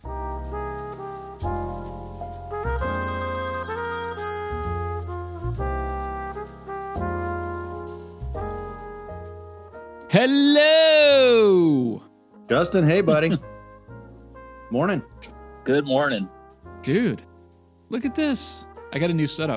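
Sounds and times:
outgoing phone call melodic chiming ringtone: 2.6 - 5.6
speech: 10.2 - 12.0, 12.6 - 13.4, 14.7 - 15.1, 15.7 - 17.3, 17.9 - 19.5.

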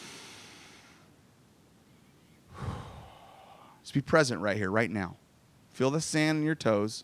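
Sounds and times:
group of people on sand exhaling breathily: 0.0 - 1.1, 2.5 - 3.8
group of people on sand inhaling slowly: 0.0 - 1.1, 2.5 - 3.8
speech: 3.9 - 5.2, 5.8 - 7.0.

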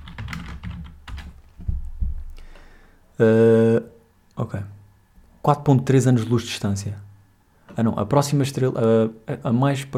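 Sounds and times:
typing on a computer keyboard: 0.0 - 1.6
speech: 3.2 - 3.9, 5.5 - 7.1, 7.8 - 9.9.

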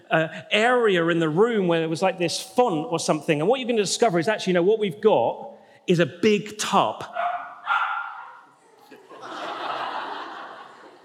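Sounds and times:
speech: 0.1 - 7.3
dog barking excitedly at a baptism gathering: 7.1 - 8.5
laughter: 8.6 - 11.0.

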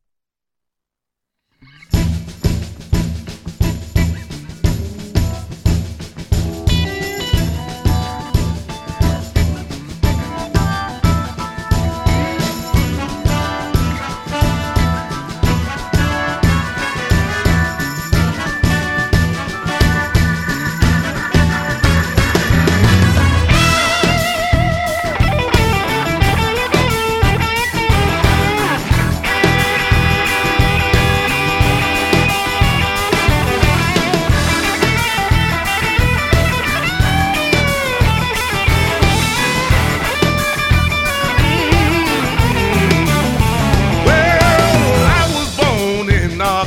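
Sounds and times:
loud blues song recording: 1.6 - 46.6.

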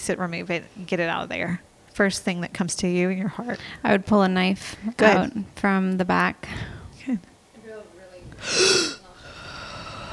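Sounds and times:
speech: 0.0 - 7.3, 8.4 - 8.8
heavy gasping inhale during energy work: 8.4 - 10.1.

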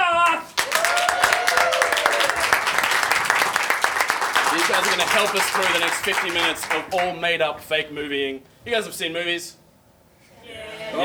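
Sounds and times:
faint voice or cheer: 0.0 - 5.8
crowd applauding: 0.2 - 7.2
speech: 4.8 - 9.6, 10.5 - 11.0.

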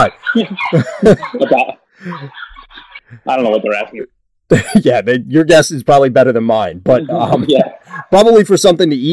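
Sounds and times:
laughter: 0.0 - 3.9, 4.5 - 5.0, 6.9 - 8.2
speech: 0.0 - 9.1
dog barking: 0.2 - 2.9.

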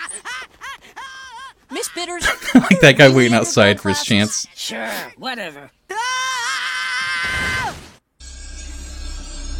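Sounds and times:
laughter: 2.0 - 3.4
speech: 2.0 - 5.8
cartoon character screaming shrilly: 5.9 - 7.8.

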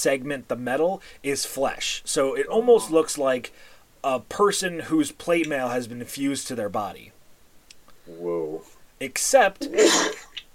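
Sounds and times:
speech: 0.0 - 7.2, 8.1 - 10.3
single sharp sneeze: 9.7 - 10.3.

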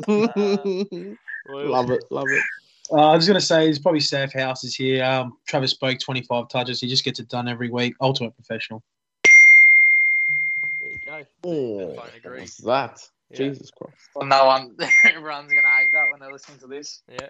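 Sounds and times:
speech: 0.0 - 9.0, 11.2 - 17.2
electronic beep: 9.3 - 11.2, 14.8 - 16.3.

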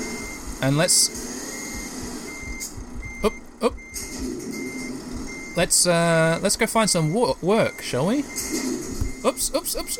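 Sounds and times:
low truck engine rumble reversing out of a garage: 0.0 - 6.2
truck reversing alarm beeping: 0.0 - 9.9
speech: 0.6 - 1.5, 3.2 - 4.4, 5.6 - 9.9.

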